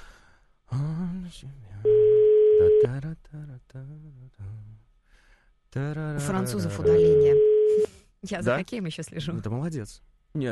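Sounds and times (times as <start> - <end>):
speech: 1.3 - 2.1, 2.8 - 4.9, 5.7 - 10.5
telephone ringback tone as an outgoing call goes through: 1.9 - 2.9, 6.8 - 7.9.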